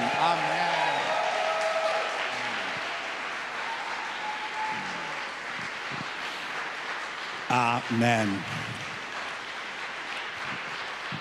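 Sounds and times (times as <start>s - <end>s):
church audience applause during a service: 0.0s - 11.1s
speech: 7.5s - 8.9s.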